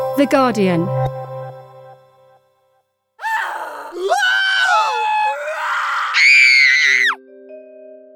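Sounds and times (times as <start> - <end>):
speech: 0.2 - 1.1
person letting out a loud piercing scream: 3.2 - 7.2.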